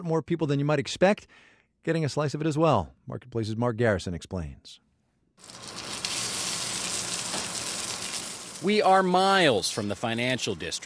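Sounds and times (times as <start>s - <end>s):
speech: 0.0s - 4.8s, 5.4s - 5.9s, 8.6s - 10.8s
pork belly frying in a hot pan: 5.4s - 10.0s.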